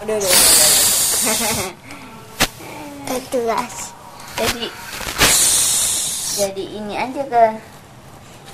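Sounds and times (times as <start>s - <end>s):
speech: 0.0s - 0.6s, 1.2s - 2.0s, 3.1s - 3.8s, 4.4s - 4.9s, 6.4s - 7.7s
quieter vocal sounds: 0.2s - 1.6s, 4.2s - 6.5s
voice imitating a hissing cockroach: 0.2s - 1.7s, 4.2s - 6.6s
short sharp burst: 0.3s - 1.6s, 4.3s - 6.5s.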